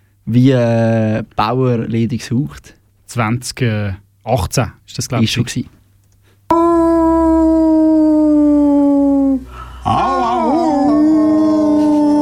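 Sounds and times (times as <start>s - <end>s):
speech: 0.3s - 5.8s
human voices imitating wolf howling in duet: 6.5s - 12.2s.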